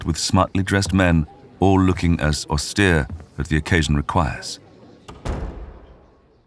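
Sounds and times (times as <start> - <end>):
speech: 0.0 - 4.6
latch click of a grand set of heavy doors: 5.1 - 6.1
grand set of heavy doors opening with a deep booming thud: 5.1 - 6.4.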